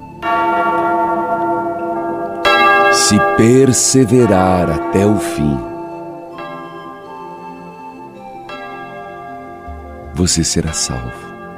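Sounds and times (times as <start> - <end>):
church bell rung by the sacristan: 0.0 - 11.5
speech: 3.1 - 5.7, 10.2 - 11.3.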